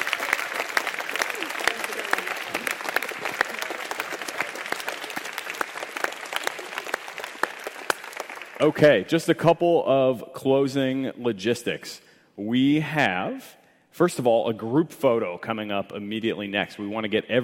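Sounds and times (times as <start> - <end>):
audience applauding: 0.0 - 9.0
speech: 8.6 - 17.4.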